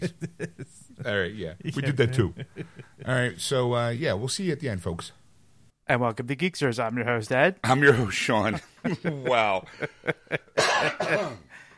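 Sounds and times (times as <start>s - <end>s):
laughter: 0.0s - 3.1s, 8.5s - 10.6s
speech: 0.0s - 5.2s, 5.9s - 11.5s
person coughing: 10.6s - 11.5s.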